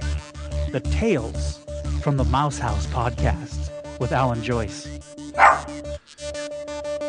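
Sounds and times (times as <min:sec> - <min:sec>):
music: 0:00.0 - 0:07.0
speech: 0:00.7 - 0:05.5
dog barking: 0:05.4 - 0:05.8.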